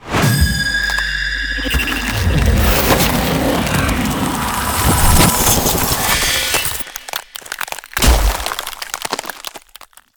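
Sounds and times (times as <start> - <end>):
ultimate ice spell effect: 0.0 - 9.7.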